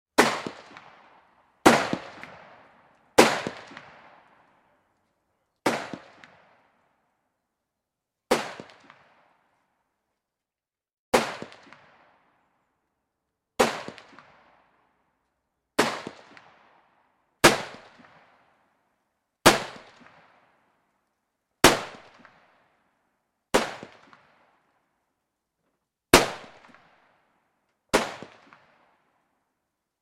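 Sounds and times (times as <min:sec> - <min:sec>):
pistol shots outdoors: 0:00.2 - 0:04.5, 0:05.6 - 0:06.8, 0:08.3 - 0:09.4, 0:11.1 - 0:12.3, 0:13.6 - 0:14.8, 0:15.8 - 0:18.6, 0:19.4 - 0:20.4, 0:21.6 - 0:22.7, 0:23.5 - 0:24.5, 0:26.1 - 0:27.1, 0:27.9 - 0:29.1.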